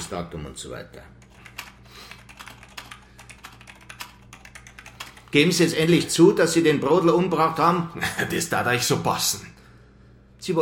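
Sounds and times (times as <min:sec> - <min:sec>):
speech: 0:00.0 - 0:01.3, 0:05.3 - 0:09.6, 0:10.4 - 0:10.6
keystrokes on a computer keyboard as a statement is typed: 0:01.2 - 0:05.6.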